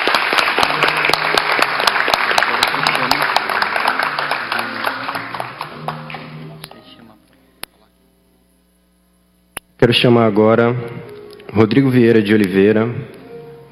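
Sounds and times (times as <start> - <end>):
crowd applauding at a solemn public tribute ceremony: 0.0 - 6.7
speech: 9.8 - 13.2.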